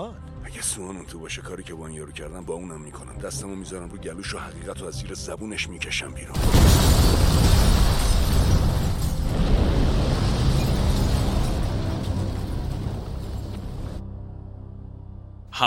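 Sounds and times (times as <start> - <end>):
speech: 0.0 - 8.6
crackling debris: 6.4 - 14.0
large explosion rumble: 6.4 - 14.0.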